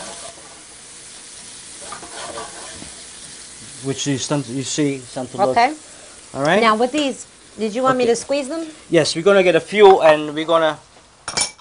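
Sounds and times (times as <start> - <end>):
drained capers sautéing in a pan: 0.0 - 11.5
stirring sounds: 1.7 - 8.9
speech: 3.8 - 10.9.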